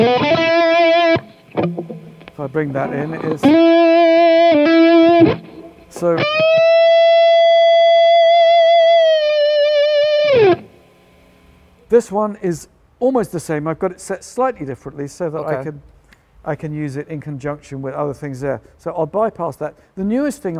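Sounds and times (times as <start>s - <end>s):
heavily distorted electric guitar chords through an amp with tube-style distortion: 0.0s - 11.3s
speech: 2.4s - 6.6s, 11.9s - 20.5s.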